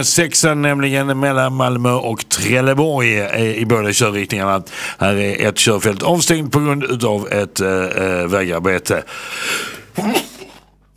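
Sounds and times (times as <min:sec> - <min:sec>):
speech: 0:00.0 - 0:10.3
breathy exhale: 0:09.1 - 0:09.9
sneeze: 0:10.0 - 0:10.7.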